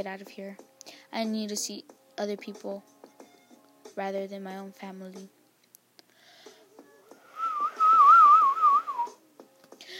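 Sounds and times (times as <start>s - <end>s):
speech: 0.0s - 2.9s, 4.0s - 5.4s
person whistling a short wavering melody: 7.3s - 9.2s.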